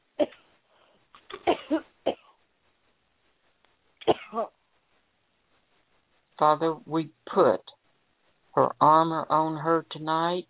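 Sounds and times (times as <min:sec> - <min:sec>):
deep harsh coughs: 0:00.2 - 0:00.5, 0:01.3 - 0:02.4, 0:04.0 - 0:04.5
speech: 0:06.4 - 0:07.8, 0:08.6 - 0:10.4.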